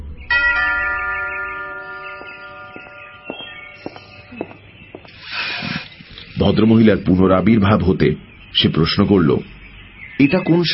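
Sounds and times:
doorbell being pressed giving a bright chime: 0.3 - 4.3
short burst of hiss: 5.2 - 5.9
speech: 6.4 - 9.6, 10.2 - 10.7.

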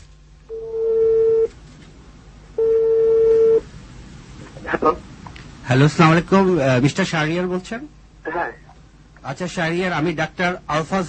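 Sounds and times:
faint noise: 0.0 - 11.0
phone line tones as a call is placed: 0.5 - 1.5, 2.6 - 3.6
speech: 5.7 - 8.0, 9.3 - 11.0.

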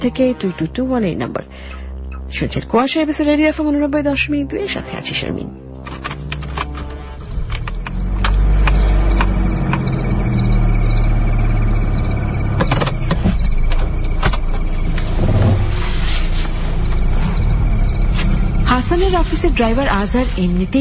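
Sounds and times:
speech: 0.0 - 1.7, 2.3 - 6.1, 18.8 - 20.7
clicks and creaks of moving car parts: 5.8 - 10.0, 12.5 - 15.1
car engine running as the car drives off: 5.9 - 20.7.

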